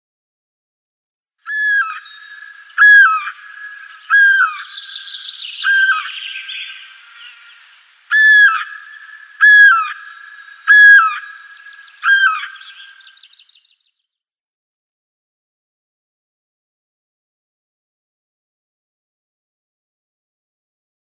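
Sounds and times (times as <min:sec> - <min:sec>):
Great Spotted Cuckoo display call: 0:01.5 - 0:13.6.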